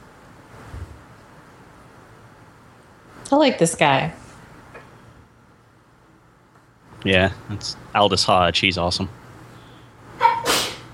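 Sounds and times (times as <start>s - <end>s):
speech: 3.3s - 4.2s, 7.0s - 9.2s
sneeze: 10.2s - 10.9s.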